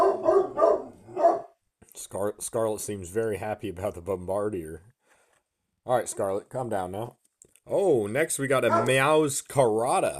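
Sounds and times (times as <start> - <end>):
sharp dog barks: 0.0 - 1.6, 8.6 - 9.1
speech: 2.1 - 4.9, 5.8 - 10.1.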